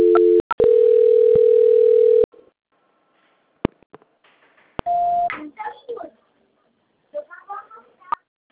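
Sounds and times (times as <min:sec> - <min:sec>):
telephone dial tone during a call transfer: 0:00.0 - 0:02.3
people talking: 0:05.3 - 0:06.2, 0:07.2 - 0:08.3.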